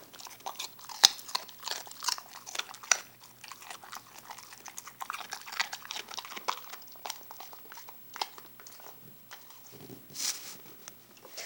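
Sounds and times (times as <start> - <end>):
Puppy crunching and chewing a baby carrot: 0.0 - 11.4.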